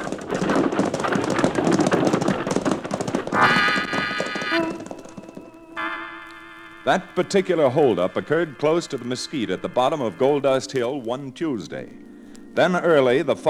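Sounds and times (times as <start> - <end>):
team of horses galloping: 0.0 - 13.4
sustained ringing tones: 3.4 - 13.4
speech: 6.9 - 12.0, 12.6 - 13.4.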